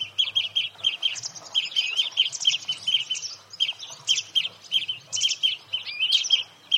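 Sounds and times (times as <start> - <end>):
European greenfinch Chloris chloris calling: 0.0 - 6.7.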